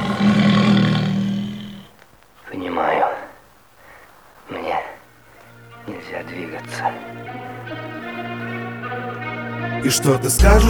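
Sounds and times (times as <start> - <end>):
tiger roaring: 0.0 - 1.9
speech: 9.8 - 10.6.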